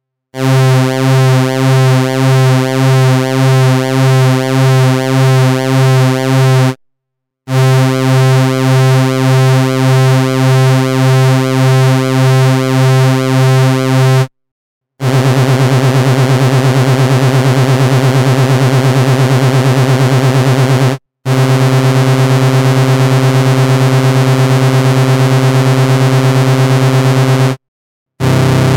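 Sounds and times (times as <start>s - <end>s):
VCO pulse-width modulated synthesizer tone: 0.4s - 6.8s, 7.5s - 14.3s, 15.0s - 27.6s, 28.2s - 28.7s.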